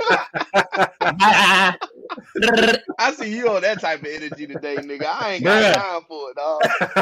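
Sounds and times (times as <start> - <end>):
laughter: 0.0 - 5.8, 6.6 - 7.0
speech: 0.1 - 1.8, 2.4 - 7.0
person imitating a sheep bleating: 0.9 - 3.0, 5.4 - 5.8.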